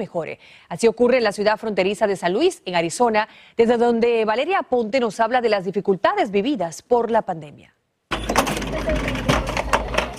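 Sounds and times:
speech: 0.0s - 7.8s
cash register clacking and clicking: 8.1s - 10.1s.

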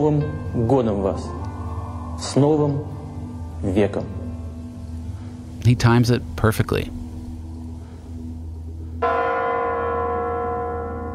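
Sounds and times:
speech: 0.0s - 1.4s, 2.2s - 3.0s, 3.6s - 4.2s, 5.6s - 7.0s
low rumble: 4.2s - 9.0s
large Kremlin tower bell strike in Russia ringing in the new millennium: 9.0s - 11.1s.

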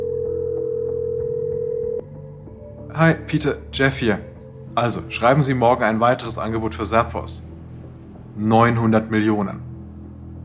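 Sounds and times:
telephone dialing tone: 0.0s - 2.0s
speech: 3.0s - 7.5s, 8.4s - 9.6s.

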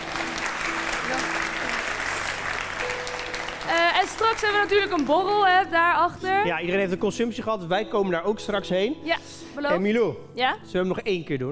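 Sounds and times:
audience applause: 0.0s - 5.7s
speech: 3.7s - 11.5s.

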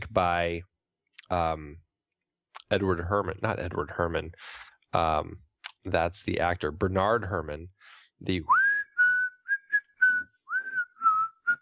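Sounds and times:
speech: 0.2s - 0.7s, 1.3s - 1.8s, 2.7s - 8.6s
whistled melody from a film score: 8.5s - 11.6s.

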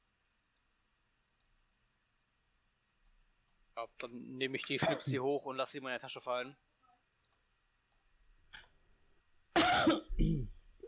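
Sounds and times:
speech: 3.8s - 6.7s
person sneezing: 9.6s - 10.6s.

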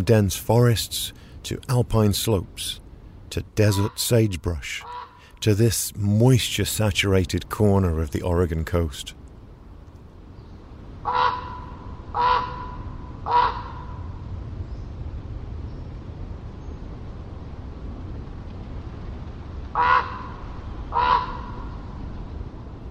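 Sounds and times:
speech: 0.0s - 9.2s
common raven calling with harsh croaking caws: 4.8s - 5.4s, 11.0s - 14.1s, 19.7s - 22.0s.

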